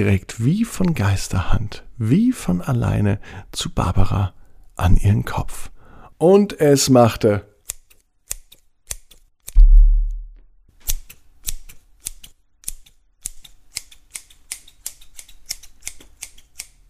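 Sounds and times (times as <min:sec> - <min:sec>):
speech: 0:00.0 - 0:07.5
scissors cutting a person's hair: 0:07.6 - 0:09.3, 0:10.8 - 0:16.8
dull low thud: 0:09.6 - 0:10.4.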